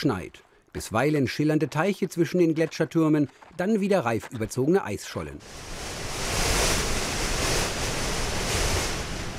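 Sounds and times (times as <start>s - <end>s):
speech: 0.0s - 6.2s
strong wind across an open icy glacier during a mountain ascent: 5.4s - 9.3s.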